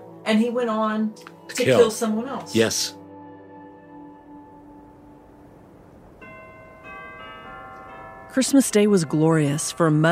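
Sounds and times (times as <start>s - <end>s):
speech: 0.3s - 3.0s, 8.4s - 10.0s
church bells ringing in a peal: 5.2s - 10.0s.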